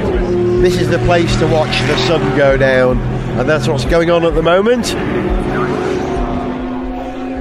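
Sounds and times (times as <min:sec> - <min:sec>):
race car engines roaring and shifting gears through a corner: 0:00.0 - 0:07.3
speech: 0:00.6 - 0:05.6.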